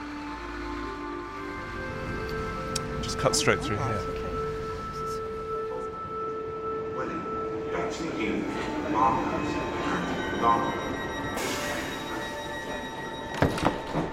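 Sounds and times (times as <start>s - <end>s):
passenger train rolling along the rails: 0.0s - 14.1s
speech: 3.1s - 4.2s, 8.2s - 9.7s, 10.4s - 10.9s.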